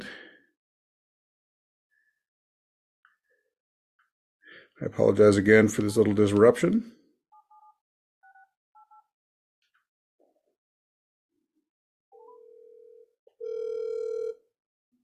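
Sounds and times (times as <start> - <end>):
speech: 4.8 - 7.0
phone ringing tone: 12.1 - 14.5.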